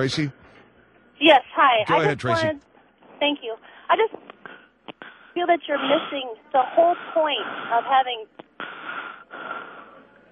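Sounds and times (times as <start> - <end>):
speech: 0.0 - 0.4, 1.2 - 4.3, 5.4 - 8.8
heavy rasping breathing over a telephone line from a caller with a sinus problem: 3.6 - 10.3.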